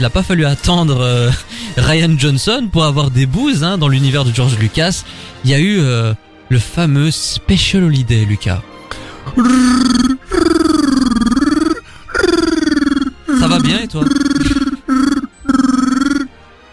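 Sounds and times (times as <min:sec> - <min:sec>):
speech: 0:00.0 - 0:08.7, 0:09.3 - 0:10.7, 0:13.6 - 0:14.6
person imitating Wookiee growls and grunts: 0:09.3 - 0:16.3
laughter: 0:13.3 - 0:15.2.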